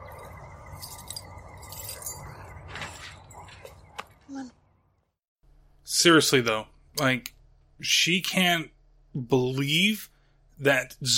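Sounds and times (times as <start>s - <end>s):
low hum: 0.0s - 11.1s
work keys jangling: 0.7s - 2.5s
speech: 6.0s - 11.1s.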